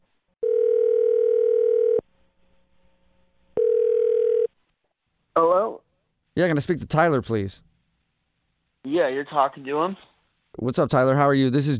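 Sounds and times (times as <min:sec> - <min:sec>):
steady telephone dial tone: 0:00.5 - 0:02.0, 0:03.6 - 0:04.5
speech: 0:06.4 - 0:07.7, 0:08.9 - 0:11.7.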